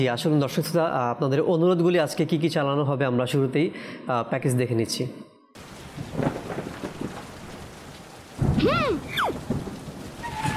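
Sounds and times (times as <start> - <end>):
speech: 0.0 - 6.3
rain hissing on surfaces during a thunderstorm: 5.6 - 10.5
thunder rumbling: 5.6 - 10.5.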